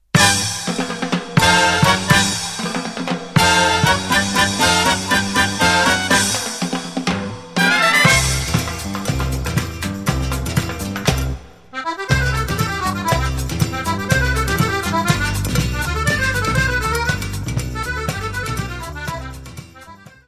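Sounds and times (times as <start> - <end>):
music: 0.0 - 20.2.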